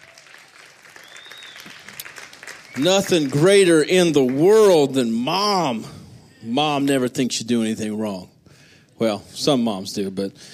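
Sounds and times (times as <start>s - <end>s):
audience applause for mothers on Mother's Day: 0.0s - 4.4s
speech: 2.8s - 8.3s, 9.0s - 10.5s.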